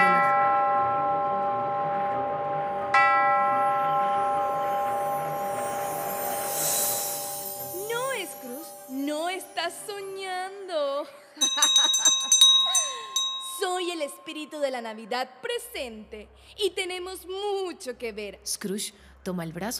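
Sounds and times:
bells ringing: 0.0 - 2.2, 2.9 - 10.7, 11.4 - 15.0
laughter: 11.4 - 12.5
speech: 14.5 - 19.7.

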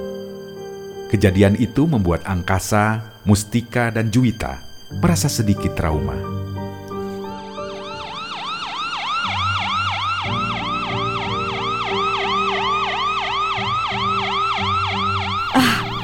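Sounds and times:
speech: 1.1 - 6.3
fire truck sirens wailing: 7.7 - 15.7.

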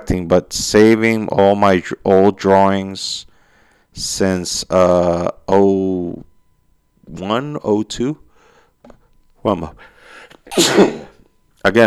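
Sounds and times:
speech: 0.0 - 3.3, 4.0 - 6.3, 7.1 - 8.2, 9.4 - 9.9, 10.5 - 11.8
loud sneeze: 10.5 - 11.2.

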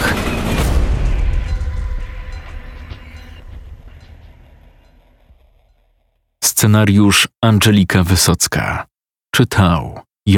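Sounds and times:
heavy train thundering past at speed: 0.0 - 6.3
speech: 6.6 - 10.3.

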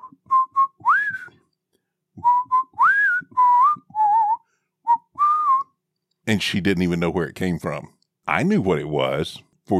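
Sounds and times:
person whistling a bouncy TV theme tune: 0.0 - 1.4, 2.2 - 5.8
speech: 6.3 - 9.7.

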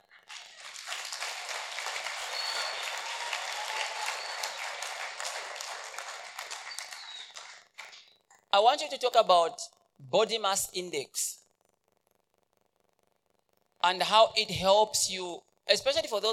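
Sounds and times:
audience clapping: 0.0 - 8.0
speech: 8.6 - 11.4, 13.8 - 16.3.

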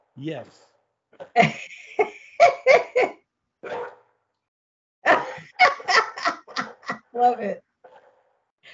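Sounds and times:
speech: 0.2 - 1.8, 7.2 - 7.6
laughter: 1.4 - 3.1, 5.1 - 7.2
dog barking: 3.6 - 4.0.

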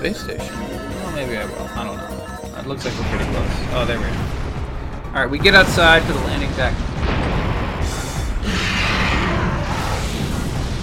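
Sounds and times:
speech: 0.0 - 4.4, 5.2 - 7.2
explosions on a space station in a video game: 2.8 - 10.8.

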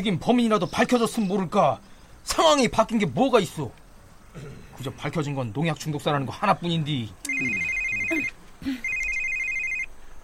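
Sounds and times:
speech: 0.0 - 3.8, 4.4 - 8.8
faint low voice murmurs: 7.3 - 8.8
electronic phone ringtone chirping: 7.3 - 9.9.

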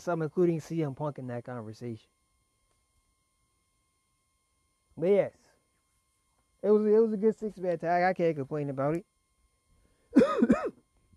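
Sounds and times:
speech: 0.0 - 2.2, 5.0 - 5.4, 6.6 - 9.1
harsh raspy throaty coughs: 10.2 - 10.8.

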